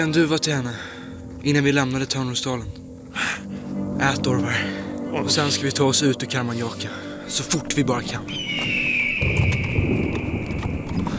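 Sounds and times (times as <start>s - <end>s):
speech: 0.0s - 8.8s
hooves of ridden horses clip-clopping: 7.7s - 11.1s.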